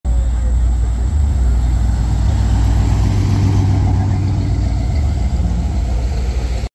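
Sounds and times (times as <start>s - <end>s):
American Oldsmobile car engine: 0.0s - 6.7s.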